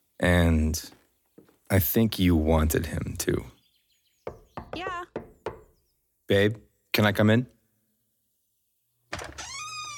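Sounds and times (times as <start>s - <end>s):
speech: 0.2s - 1.0s, 1.7s - 3.6s, 6.3s - 7.6s
bathroom door latch knock: 4.3s - 5.8s
bathroom door creaking as it is opened: 9.1s - 9.9s.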